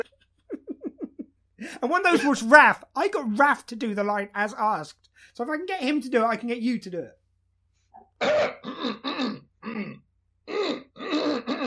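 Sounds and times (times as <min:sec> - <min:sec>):
speech: 0:01.8 - 0:07.2
man clearing throat: 0:08.2 - 0:11.6.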